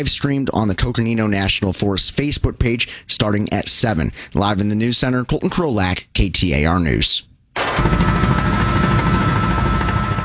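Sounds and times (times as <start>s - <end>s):
speech: 0.0s - 8.5s
helicopter rotor chopping overhead: 7.6s - 10.2s.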